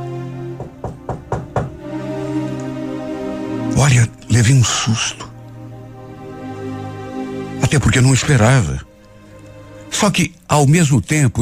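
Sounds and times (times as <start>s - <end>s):
firm knocks on a door: 0.6s - 1.8s
speech: 3.8s - 5.3s, 7.7s - 8.9s, 9.9s - 11.4s.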